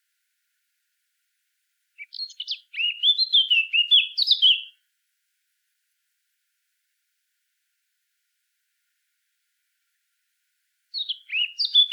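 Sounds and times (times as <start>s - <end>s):
Eurasian blackcap Sylvia atricapilla singing: 2.0s - 4.7s, 11.0s - 11.9s.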